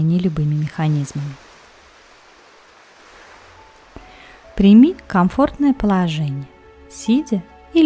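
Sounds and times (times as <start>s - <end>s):
speech: 0.0s - 1.4s, 4.6s - 7.8s
soft wash of ocean waves and surf: 0.0s - 5.9s.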